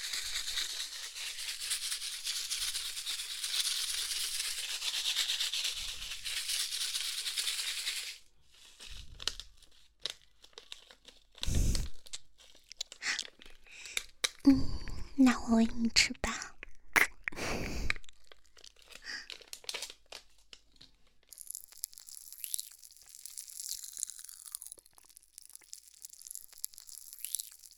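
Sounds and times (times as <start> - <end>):
strawberry popping candy crackles: 0.0 - 27.7
strawberry popping candy packet wrapper crinkling and rustling: 7.9 - 14.4, 17.9 - 27.7
popping candy packet handling noises: 8.7 - 14.5, 17.7 - 27.7
speech: 15.2 - 16.3.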